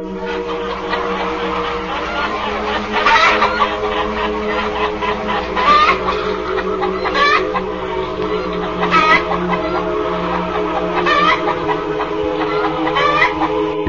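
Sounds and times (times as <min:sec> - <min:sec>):
hen clucking: 0:00.0 - 0:13.8
laughter: 0:00.0 - 0:13.8
steady busy hum: 0:00.0 - 0:13.8.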